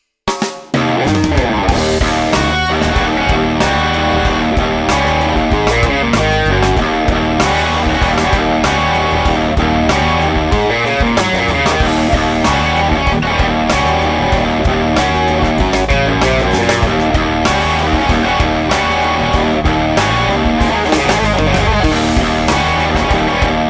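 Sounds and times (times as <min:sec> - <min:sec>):
rock guitar playing: 0:00.7 - 0:23.6.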